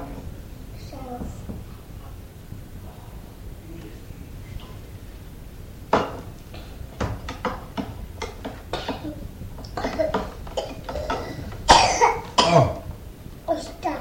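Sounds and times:
light clinking and clattering: 5.9 - 12.4
person coughing: 9.8 - 12.9.

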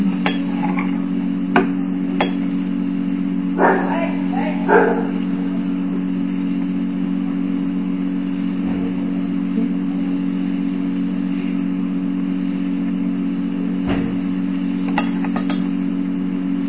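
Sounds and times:
steady low electrical hum: 0.0 - 16.6
dog barking: 3.6 - 5.5.

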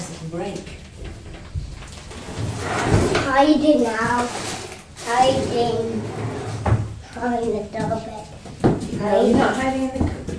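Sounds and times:
speech: 0.3 - 0.8, 3.4 - 4.5, 5.1 - 6.2, 7.2 - 8.3, 9.0 - 10.1
glass-paned cupboard door rattly sliding scrape: 2.1 - 6.9.

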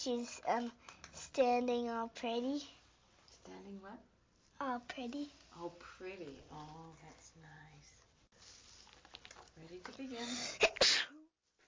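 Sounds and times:
speech: 0.0 - 2.8, 3.4 - 8.0, 9.6 - 11.2
loud sneeze: 10.5 - 11.2.

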